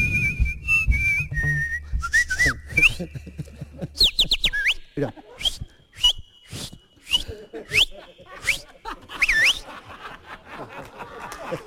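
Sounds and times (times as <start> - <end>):
person whistling a lively warbling tune: 0.0 - 3.3, 4.0 - 9.7
people laughing: 2.7 - 5.8, 6.9 - 11.6.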